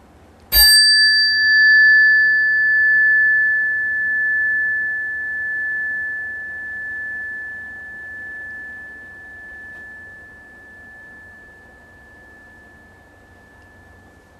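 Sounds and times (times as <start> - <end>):
single bright bell strike ringing out: 0.5 - 14.3.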